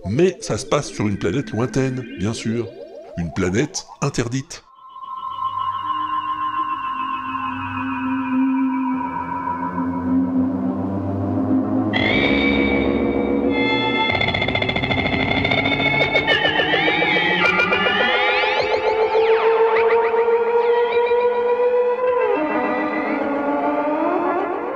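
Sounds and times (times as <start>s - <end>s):
eerie electronic science-fiction film music with warbling siren-like tones: 0.0s - 4.0s, 4.7s - 24.7s
speech: 0.0s - 4.7s.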